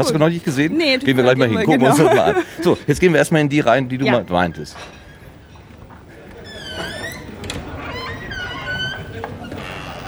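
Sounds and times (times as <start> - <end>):
speech: 0.0 - 5.0
laughter: 0.0 - 7.8
men's restroom door creaking open: 4.1 - 10.0.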